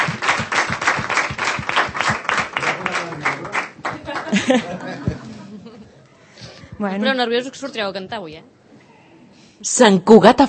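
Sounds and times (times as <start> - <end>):
audience applauding a visiting music band: 0.0 - 5.4
laughter: 2.6 - 6.2
speech: 4.3 - 4.9, 6.8 - 8.6, 9.6 - 10.4.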